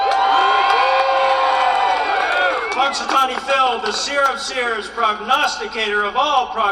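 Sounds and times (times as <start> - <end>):
shouts and whoops from the crowd: 0.0 - 3.2
crowd of thousands cheering: 0.0 - 4.3
speech: 2.9 - 6.6.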